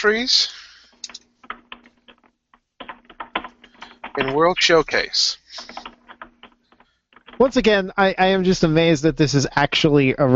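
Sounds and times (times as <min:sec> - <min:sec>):
speech: 0:00.0 - 0:00.6, 0:04.2 - 0:05.8, 0:07.4 - 0:10.3
faint steady hum: 0:00.0 - 0:10.3
typing on a computer keyboard: 0:00.9 - 0:07.8.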